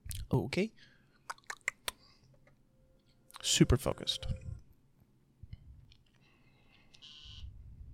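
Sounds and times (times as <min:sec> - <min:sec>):
speech: 0:00.4 - 0:00.9, 0:03.5 - 0:04.4
phone buzzing tone: 0:07.0 - 0:07.5.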